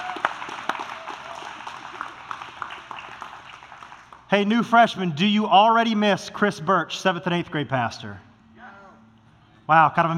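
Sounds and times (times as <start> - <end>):
audience applauding freshmen and their parents: 0.0 - 4.3
speech: 4.3 - 8.3, 9.7 - 10.1.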